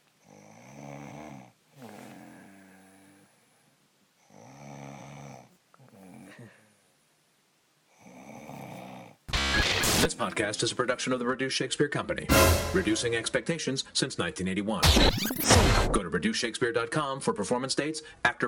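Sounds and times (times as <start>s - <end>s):
woman snoring: 0.2s - 3.4s, 4.2s - 6.7s, 7.9s - 9.2s
speech: 10.0s - 18.4s.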